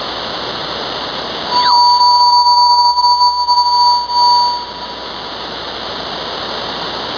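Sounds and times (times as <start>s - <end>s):
216MHz radio signal: 1.5s - 5.3s.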